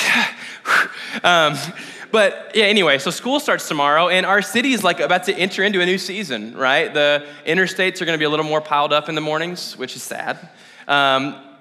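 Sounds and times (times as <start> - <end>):
heavy breaths blown into a microphone: 0.0 - 2.2, 7.2 - 7.5, 10.4 - 10.9
speech: 1.2 - 11.5.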